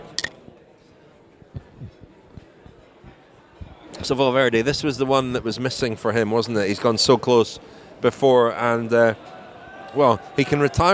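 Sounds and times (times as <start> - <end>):
beer glasses clinking in a toast: 0.0 - 0.4
murmur of voices: 0.0 - 10.9
speech: 4.0 - 10.9.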